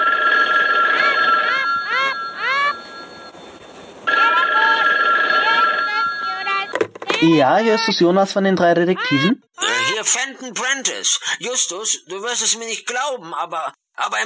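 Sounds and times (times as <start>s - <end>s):
telephone ringing with electronic warble: 0.0s - 7.8s
speech: 7.2s - 14.2s.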